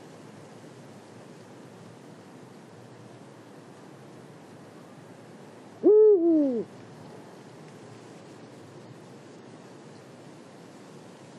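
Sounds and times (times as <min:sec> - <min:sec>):
Eurasian eagle-owl call in Marianka Slovakia: 0:05.8 - 0:06.7.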